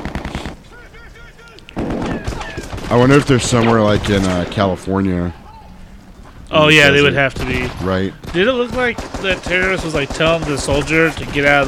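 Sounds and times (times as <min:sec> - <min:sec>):
rifle gunfire from a low-budget film scene: 0:00.0 - 0:00.6, 0:01.8 - 0:03.3, 0:08.2 - 0:11.6
speech: 0:02.9 - 0:05.4, 0:06.5 - 0:11.6.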